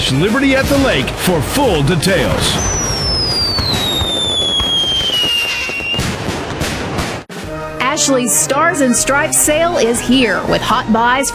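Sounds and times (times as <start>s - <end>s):
speech: 0.1s - 2.7s, 8.0s - 11.3s
fireworks bursting with dense crackle: 0.3s - 7.5s
whistling firework rocket gliding down in pitch: 2.1s - 7.3s.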